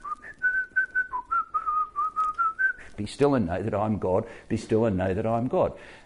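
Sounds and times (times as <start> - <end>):
person whistling a slow hymn tune in a coffee shop: 0.0 - 3.0
speech: 3.0 - 6.0.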